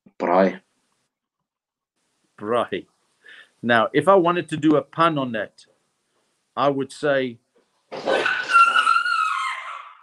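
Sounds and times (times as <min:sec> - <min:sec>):
speech: 0:00.4 - 0:00.6, 0:02.4 - 0:02.9, 0:03.6 - 0:05.7, 0:06.6 - 0:08.1
dog barking in a drawn-out whining cry: 0:08.1 - 0:10.0.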